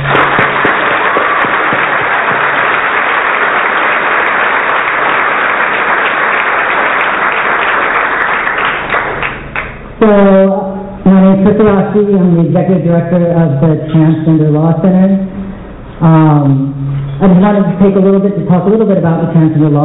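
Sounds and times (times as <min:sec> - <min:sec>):
sizable crowd applauding: 0:00.0 - 0:09.8
speech: 0:10.1 - 0:10.6, 0:11.5 - 0:15.4, 0:16.0 - 0:19.8.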